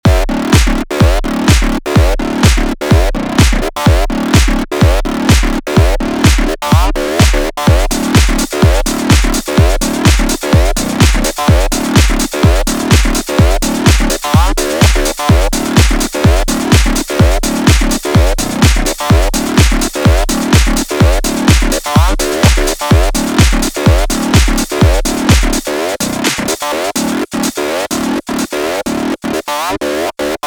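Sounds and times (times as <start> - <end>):
acid bass with chorus flex: 0.0 - 30.4.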